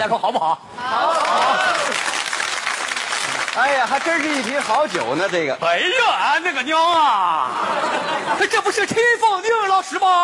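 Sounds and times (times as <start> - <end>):
speech: 0.0 - 2.1, 3.6 - 10.2
audience applause at a stage show: 1.0 - 5.4
laughter: 7.3 - 9.1.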